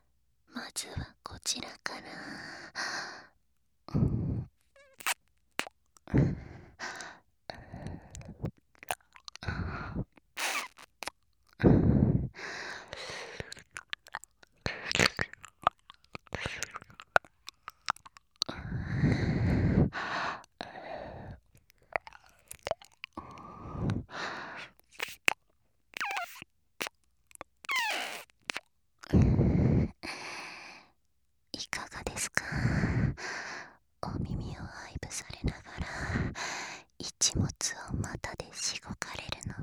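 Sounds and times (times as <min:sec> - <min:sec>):
soft sighs and breaths: 0:00.5 - 0:05.2, 0:06.0 - 0:08.6, 0:09.3 - 0:25.3, 0:27.7 - 0:31.0, 0:31.6 - 0:39.6
speech: 0:00.7 - 0:03.3
wet ear-licking mouth sounds in an ASMR session: 0:04.8 - 0:06.1, 0:06.8 - 0:11.6, 0:12.6 - 0:29.1.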